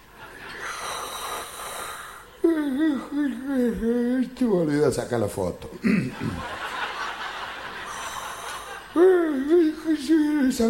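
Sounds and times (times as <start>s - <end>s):
person imitating a big old-fashioned yawn: 1.1s - 4.2s
speech: 2.8s - 6.6s, 9.9s - 10.6s
laughter: 5.9s - 9.0s.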